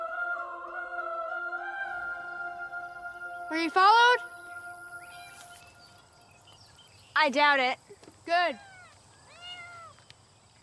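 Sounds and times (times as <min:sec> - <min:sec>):
faint hiss: 0:00.0 - 0:10.6
speech: 0:03.5 - 0:04.3, 0:07.2 - 0:08.7
cat meowing: 0:08.6 - 0:10.0.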